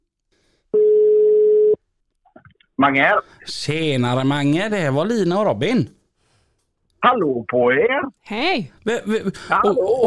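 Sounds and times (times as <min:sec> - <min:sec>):
telephone ringback tone: 0:00.8 - 0:01.8
speech: 0:02.8 - 0:06.0, 0:07.0 - 0:10.0.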